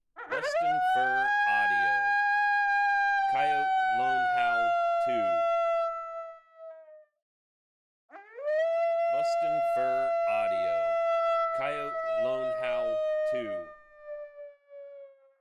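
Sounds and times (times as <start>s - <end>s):
lone coyote howling: 0.3s - 6.1s, 9.1s - 14.2s.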